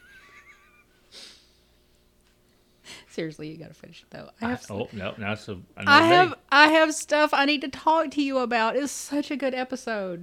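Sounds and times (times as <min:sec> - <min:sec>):
sharp breathy gasp: 0:01.1 - 0:01.6
speech: 0:03.2 - 0:10.2.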